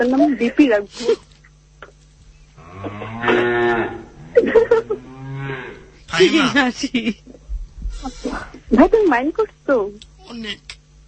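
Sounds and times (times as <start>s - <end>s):
speech: 0.0s - 1.3s, 2.8s - 7.3s, 8.0s - 10.7s
newly bought cows mooing: 2.6s - 6.0s
laughter: 4.3s - 5.1s, 6.1s - 7.4s.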